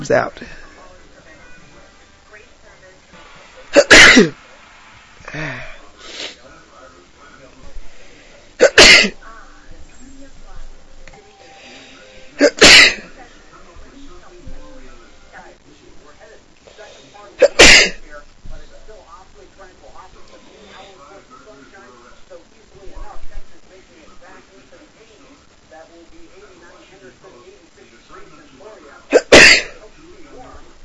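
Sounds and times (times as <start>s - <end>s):
speech: 0.0s - 0.6s, 4.2s - 4.4s, 5.3s - 5.7s, 8.7s - 9.2s
person with a cold sneezing: 3.7s - 4.4s, 29.1s - 29.8s
quiet breathing and sniffling: 5.2s - 6.4s, 11.4s - 12.4s.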